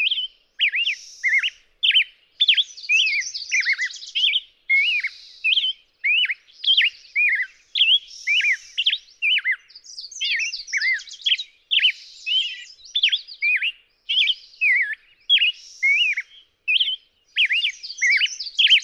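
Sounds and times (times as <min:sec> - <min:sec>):
black-headed grosbeak singing warbled whistles: 0:00.0 - 0:18.8.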